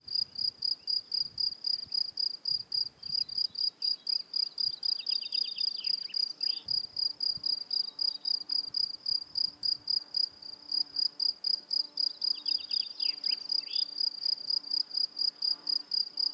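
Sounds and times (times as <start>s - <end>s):
cricket song chirping: 0.1s - 16.3s.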